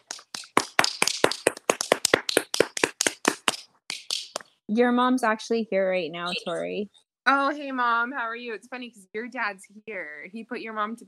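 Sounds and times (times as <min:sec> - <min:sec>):
hand clapping for the moms: 0:00.0 - 0:04.5
speech: 0:04.7 - 0:11.0.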